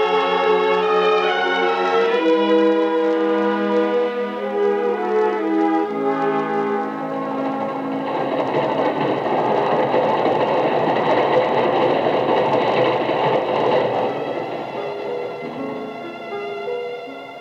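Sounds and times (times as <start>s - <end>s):
train rumbling at a railway platform with rolling wheels and hiss: 0.0s - 17.3s.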